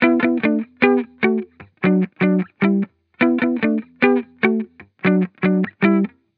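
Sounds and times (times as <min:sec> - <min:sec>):
hip hop guitar loop in E major: 0:00.0 - 0:06.2.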